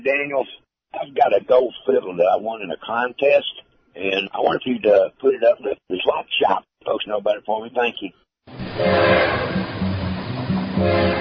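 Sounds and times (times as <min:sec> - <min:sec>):
speech: 0:00.0 - 0:09.8, 0:10.8 - 0:11.1
train rumbling on tracks: 0:08.5 - 0:11.1.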